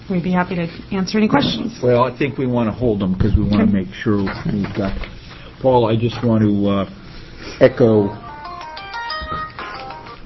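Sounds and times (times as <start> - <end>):
speech: 0.1 - 8.2
cell phone ringtone going off during a committee meeting: 7.7 - 10.2.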